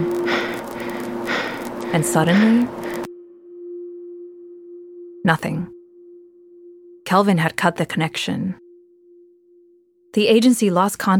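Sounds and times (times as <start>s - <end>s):
steady hum of a radio connection: 0.0s - 10.4s
man breathing through a noisy radio connection: 0.2s - 1.7s
speech: 2.0s - 2.9s, 5.2s - 5.8s, 7.1s - 8.6s, 10.1s - 11.1s.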